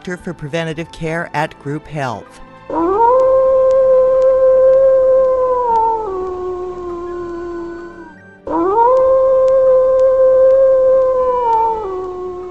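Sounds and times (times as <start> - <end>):
speech: 0.0 - 3.0
wolves howling: 2.7 - 12.4.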